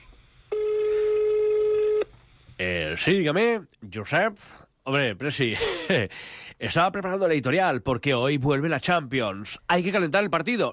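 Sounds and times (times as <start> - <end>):
electronic telephone ring tone: 0.5 - 2.1
speech: 2.6 - 10.7.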